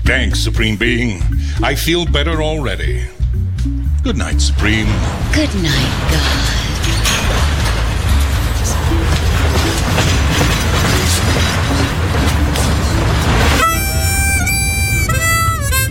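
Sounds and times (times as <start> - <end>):
speech: 0.1 - 3.2, 4.0 - 6.6
train passing on railway line: 3.9 - 15.8
shrill tonal train horn or brake squeal: 13.5 - 15.8.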